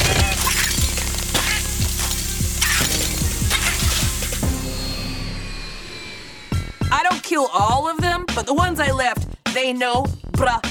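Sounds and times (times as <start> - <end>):
frozen bodies shattering like glass: 0.0 - 5.0
steady droning background: 0.0 - 7.2
speech: 7.3 - 10.6.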